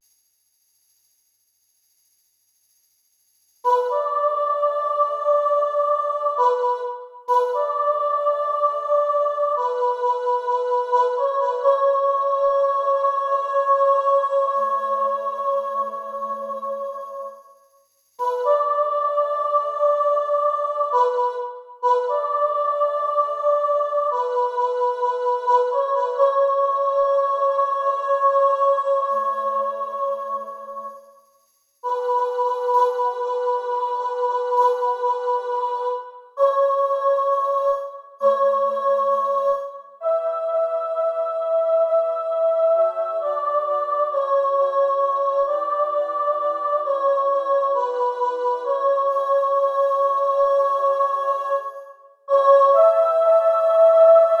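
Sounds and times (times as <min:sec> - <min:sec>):
emphasized soprano voice singing: 0:03.7 - 0:17.4, 0:18.2 - 0:31.0, 0:31.8 - 0:54.3.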